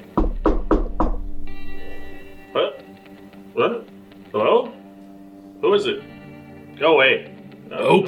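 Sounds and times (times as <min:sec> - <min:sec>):
knocking on a wooden bedroom door: 0:00.0 - 0:02.3
speech: 0:05.8 - 0:06.1, 0:06.8 - 0:08.0.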